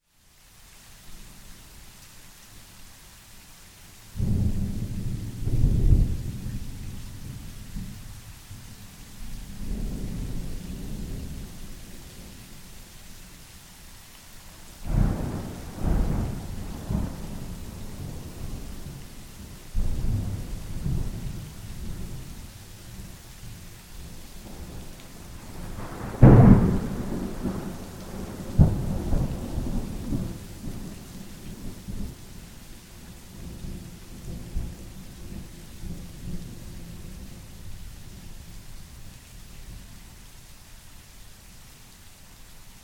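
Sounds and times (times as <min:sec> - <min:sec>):
rain: 0:00.0 - 0:42.8
thunder: 0:04.2 - 0:07.4, 0:14.9 - 0:19.0, 0:25.5 - 0:30.8.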